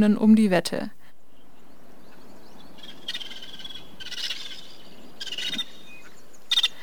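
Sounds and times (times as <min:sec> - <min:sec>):
speech: 0:00.0 - 0:01.0
faint hiss of ambience: 0:00.0 - 0:06.8
vulturine guineafowl harsh rapid chattering calls: 0:02.1 - 0:06.8.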